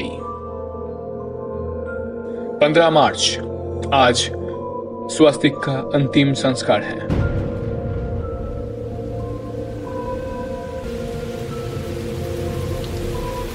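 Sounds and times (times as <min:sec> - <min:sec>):
speech: 0:02.6 - 0:04.4, 0:05.1 - 0:07.3
distant low rumble of thunder: 0:07.1 - 0:13.5
steady continuous rain pouring down: 0:07.1 - 0:13.5.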